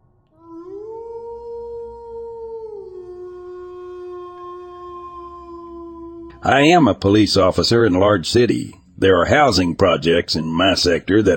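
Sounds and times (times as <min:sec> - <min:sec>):
low rumbling background: 0:00.0 - 0:11.3
animal howling: 0:00.4 - 0:07.8
speech: 0:06.4 - 0:11.3.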